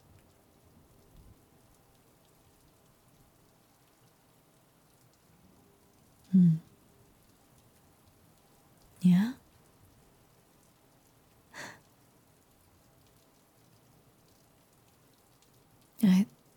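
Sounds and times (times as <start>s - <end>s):
soft steady rain drumming on housetops and windows at night: 0.0s - 16.5s
short louder breathy sounds: 6.3s - 6.6s, 11.6s - 11.8s
speech: 6.3s - 6.7s, 16.0s - 16.4s.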